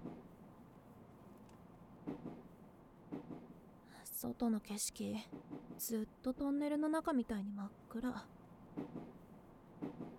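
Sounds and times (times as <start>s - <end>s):
train departing and running heard from inside the carriage: 0.0s - 3.8s, 4.4s - 6.4s, 8.4s - 10.1s
speech: 4.1s - 9.1s.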